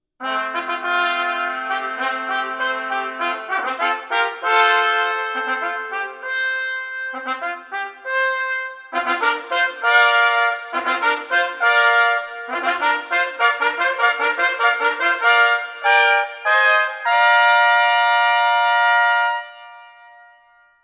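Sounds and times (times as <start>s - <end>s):
trumpet fanfare: 0.2s - 20.4s.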